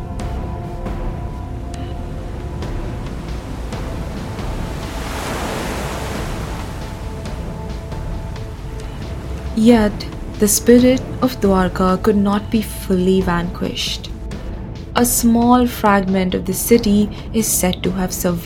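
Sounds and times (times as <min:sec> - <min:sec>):
ocean waves surging in a dense steady roar: 0:01.1 - 0:12.5
ocean swell building and breaking: 0:01.8 - 0:11.2
splashy crackles of ocean waves: 0:03.0 - 0:09.6
speech: 0:09.6 - 0:14.1, 0:15.0 - 0:18.4.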